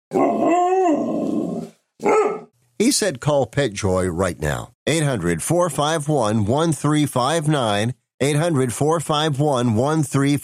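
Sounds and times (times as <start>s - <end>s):
speech: 0.1s - 1.1s, 2.9s - 10.4s
male dog barking: 2.0s - 2.5s.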